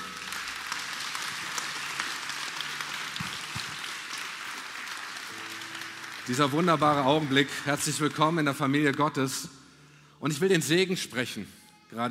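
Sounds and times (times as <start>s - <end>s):
crowd applauding: 0.0s - 9.4s
speech: 6.3s - 9.6s, 10.2s - 12.1s.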